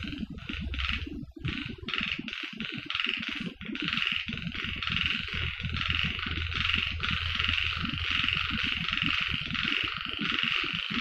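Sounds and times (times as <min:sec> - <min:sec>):
low rumbling background: 0:00.0 - 0:01.9, 0:04.2 - 0:09.8
frogs calling in a dense chorus on Okinawa: 0:01.6 - 0:10.9.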